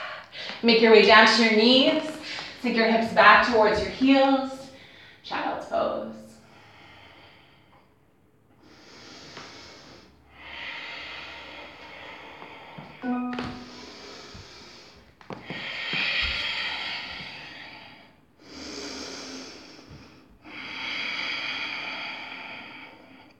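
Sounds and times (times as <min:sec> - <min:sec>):
speech: 0:00.6 - 0:04.6, 0:05.3 - 0:06.2
slow deep breathing close to the microphone: 0:06.3 - 0:13.0, 0:13.6 - 0:23.3.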